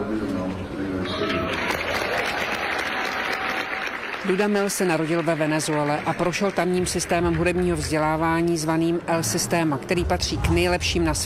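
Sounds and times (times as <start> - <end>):
orchestra musicians cheering: 1.0 - 4.7
orchestra musicians applauding: 1.0 - 8.1
speech: 4.2 - 11.2.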